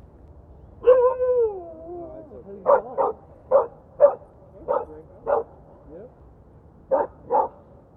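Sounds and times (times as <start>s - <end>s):
husky barking: 2.6s - 5.6s, 6.9s - 7.6s.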